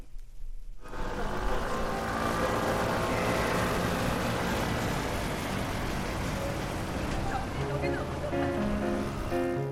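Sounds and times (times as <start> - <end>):
many cars and motorbikes pulling away with engines revving: 0.8 - 9.6
traffic barrier lifting at a bridge: 0.9 - 9.3.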